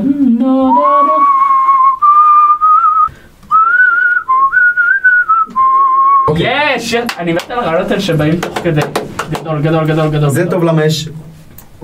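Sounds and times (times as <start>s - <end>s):
person whistling a melody: 0.7s - 6.3s
brief breaths: 3.1s - 3.5s
speech: 6.8s - 11.2s.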